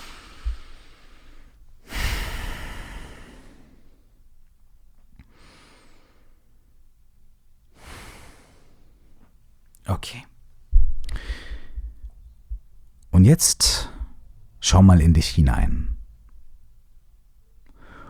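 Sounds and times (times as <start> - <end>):
slow deep breathing in and out during a guided relaxation exercise: 0.0 - 4.2, 5.2 - 6.7, 7.7 - 9.3, 10.9 - 12.6, 17.7 - 18.0
speech: 9.9 - 10.3, 13.2 - 13.9, 14.6 - 15.9.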